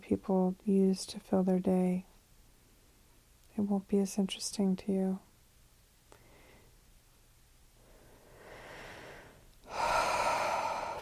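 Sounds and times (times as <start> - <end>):
speech: 0.1 - 2.1, 3.6 - 5.2
slow inhale and long forceful exhale: 7.8 - 11.0.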